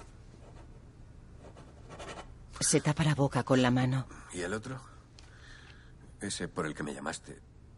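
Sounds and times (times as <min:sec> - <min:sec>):
pen scratching across paper signing a document: 0:01.4 - 0:02.3
speech: 0:02.7 - 0:04.9, 0:06.2 - 0:07.5.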